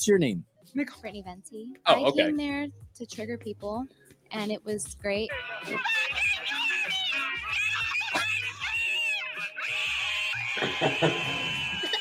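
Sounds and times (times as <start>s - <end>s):
speech: 0.0s - 6.2s, 10.6s - 11.5s
frantic yelling: 5.3s - 11.9s
laughing bursts: 5.3s - 11.9s
person screaming: 5.3s - 11.9s.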